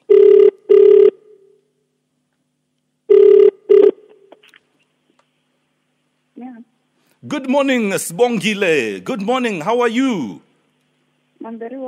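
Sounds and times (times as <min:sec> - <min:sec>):
telephone ringback tone on an outgoing call on a radio show: 0:00.1 - 0:01.2, 0:03.1 - 0:04.0
speech: 0:07.3 - 0:10.5, 0:11.5 - 0:11.8.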